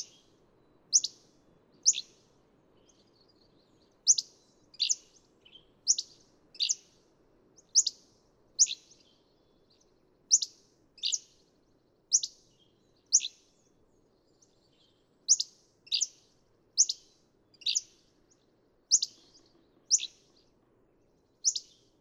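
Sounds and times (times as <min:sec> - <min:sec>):
Hammond's flycatcher calling with sharp chips and burry notes: 0:00.0 - 0:00.3, 0:00.9 - 0:02.2, 0:04.0 - 0:05.2, 0:05.8 - 0:06.9, 0:07.7 - 0:08.0, 0:08.6 - 0:09.0, 0:10.3 - 0:11.4, 0:12.1 - 0:12.4, 0:13.1 - 0:13.4, 0:15.3 - 0:16.2, 0:16.8 - 0:18.1, 0:18.9 - 0:20.3, 0:21.4 - 0:21.9.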